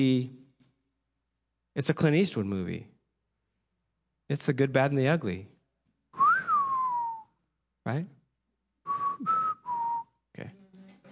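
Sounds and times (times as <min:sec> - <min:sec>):
speech: 0:00.0 - 0:00.4, 0:01.8 - 0:02.9, 0:04.3 - 0:05.5, 0:07.9 - 0:08.2
person whistling a short three-note tune: 0:06.2 - 0:07.4, 0:08.9 - 0:10.2.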